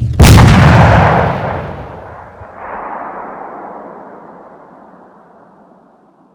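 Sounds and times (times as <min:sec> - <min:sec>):
bomb explosion: 0:00.0 - 0:05.8.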